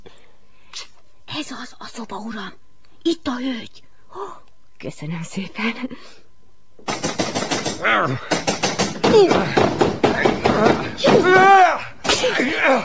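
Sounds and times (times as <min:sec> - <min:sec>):
speech: 0:01.4 - 0:06.2, 0:07.8 - 0:08.4, 0:09.1 - 0:09.8, 0:10.6 - 0:12.8
door being battered and forced in with heavy blows: 0:06.8 - 0:12.5
people shouting for help: 0:09.0 - 0:12.8.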